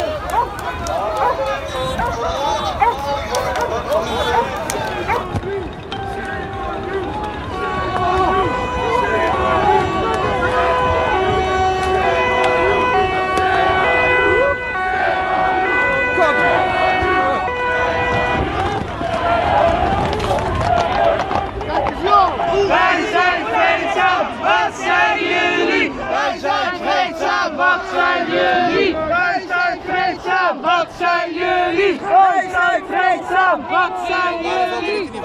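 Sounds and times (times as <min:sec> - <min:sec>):
sirens wailing: 0:00.0 - 0:20.3
crowd shouting and yelling: 0:00.0 - 0:35.2
large crowd running from charging police: 0:00.0 - 0:35.2.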